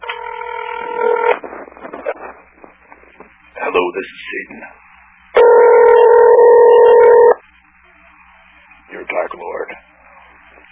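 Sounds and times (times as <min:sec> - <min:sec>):
cell phone electronic dialing tone: 0:00.0 - 0:01.4, 0:05.4 - 0:07.4
crackly phone line noise: 0:00.0 - 0:10.6
speech: 0:03.8 - 0:04.8.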